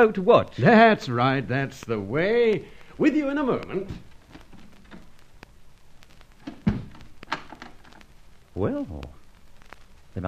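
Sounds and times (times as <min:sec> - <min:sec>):
speech: 0:00.0 - 0:04.1, 0:08.6 - 0:09.2
door thudding shut: 0:06.4 - 0:07.7
metallic click of a lock or latch catching: 0:06.4 - 0:08.0.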